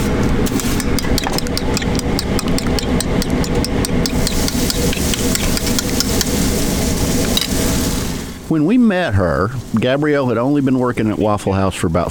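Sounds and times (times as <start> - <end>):
low kitchen hum: 0.0 - 11.2
metallic spatula taps and scrapes on a flat top grill: 0.5 - 6.5
hash browns sizzling on a flat top grill: 1.6 - 8.5
speech: 8.5 - 12.0.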